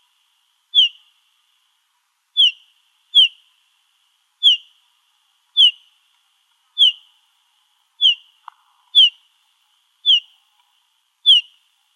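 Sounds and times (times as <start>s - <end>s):
olive warbler whistled calls in Arizona: 0.7s - 1.0s, 2.4s - 3.4s, 4.4s - 4.7s, 5.6s - 5.9s, 6.8s - 7.1s, 8.0s - 8.3s, 9.0s - 9.2s, 10.0s - 10.3s, 11.2s - 11.6s.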